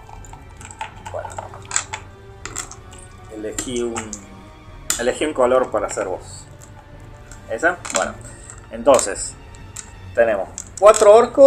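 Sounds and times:
dice clattering on a hard surface: 0:00.1 - 0:04.3, 0:04.9 - 0:11.4
speech: 0:03.4 - 0:04.3, 0:05.0 - 0:06.4, 0:07.5 - 0:09.4, 0:10.2 - 0:11.4.

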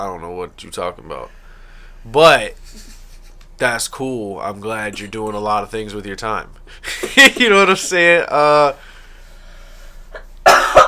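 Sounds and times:
speech: 0:00.0 - 0:01.4, 0:02.0 - 0:03.0, 0:03.6 - 0:08.9
faint breath: 0:01.3 - 0:02.0, 0:08.8 - 0:10.2
person coughing: 0:10.2 - 0:10.8.

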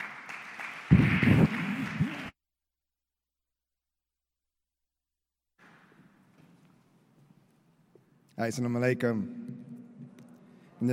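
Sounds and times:
audience applause: 0:00.0 - 0:02.3
speech: 0:08.4 - 0:09.4.

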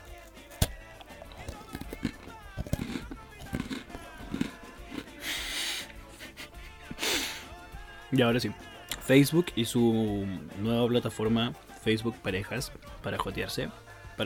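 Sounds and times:
bite into an Oreo sandwich cookie: 0:00.0 - 0:05.4
wet chewing and crunching of an Oreo sandwich cookie: 0:00.0 - 0:05.4
speech: 0:08.1 - 0:14.2.

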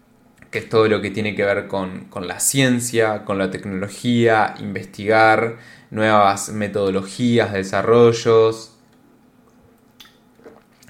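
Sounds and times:
speech: 0:00.5 - 0:08.7
sip of water: 0:09.4 - 0:10.8
soft wet mouth and swallowing sounds: 0:09.4 - 0:10.8.

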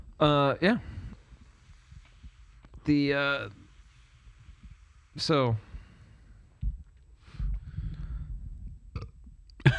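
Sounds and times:
speech: 0:00.2 - 0:01.0, 0:02.9 - 0:03.6, 0:05.2 - 0:05.7
low guttural burp: 0:08.9 - 0:09.7.

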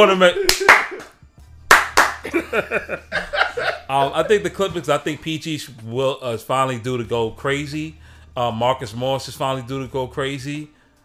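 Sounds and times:
speech: 0:00.0 - 0:00.7, 0:02.2 - 0:10.8
single sharp loud hand clap: 0:00.4 - 0:02.5
laughter: 0:02.2 - 0:04.4.

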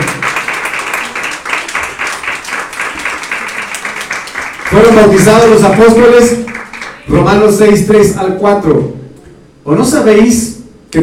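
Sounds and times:
audience clapping during a sermon: 0:00.0 - 0:07.4
speech: 0:04.8 - 0:09.0, 0:09.6 - 0:11.0.

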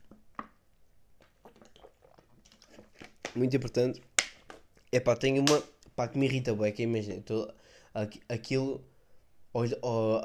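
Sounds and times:
person drinking water: 0:01.2 - 0:03.4
speech: 0:03.4 - 0:04.1, 0:04.9 - 0:08.9, 0:09.5 - 0:10.2.

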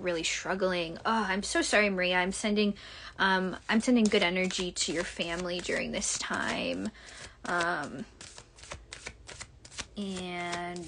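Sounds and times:
speech: 0:00.0 - 0:08.3, 0:10.0 - 0:10.8
playing cards being shuffled: 0:03.6 - 0:10.8.

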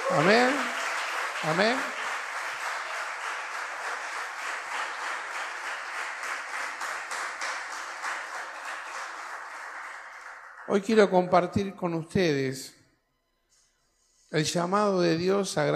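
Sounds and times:
crowd applauding: 0:00.0 - 0:11.5
speech: 0:00.1 - 0:00.8, 0:01.4 - 0:02.0, 0:10.7 - 0:12.8, 0:14.3 - 0:15.7.

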